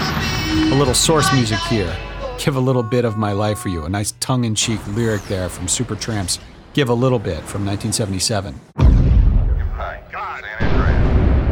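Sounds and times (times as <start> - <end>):
speech: 0.7 - 8.8
missile detonating in a film disaster scene: 8.8 - 10.0, 10.6 - 11.5.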